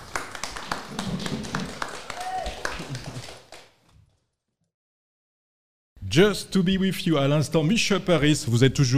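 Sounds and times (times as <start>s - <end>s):
crowd applauding: 0.0s - 3.8s
speech: 6.1s - 8.9s.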